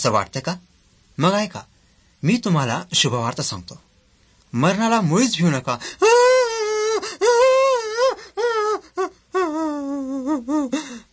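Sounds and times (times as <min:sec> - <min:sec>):
speech: 0:00.0 - 0:03.9, 0:04.5 - 0:06.2, 0:10.4 - 0:11.0
person wailing and sobbing over a death: 0:05.8 - 0:11.1.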